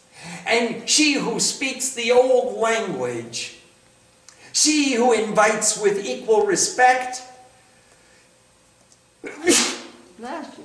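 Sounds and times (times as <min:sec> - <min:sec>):
speech: 0:00.5 - 0:03.6, 0:04.5 - 0:07.3
person sneezing forcefully: 0:09.2 - 0:10.0.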